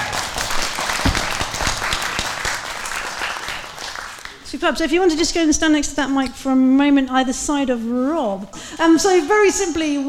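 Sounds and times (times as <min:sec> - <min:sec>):
audience applause for volunteers at a live event: 0:00.0 - 0:04.4
speech: 0:04.5 - 0:10.0.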